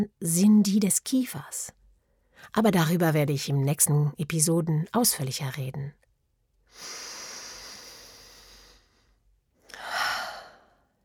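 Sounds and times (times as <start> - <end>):
speech: 0.0 - 1.8, 2.4 - 6.0
slow deliberate breathing, in through the nose, out through the mouth: 6.7 - 10.9.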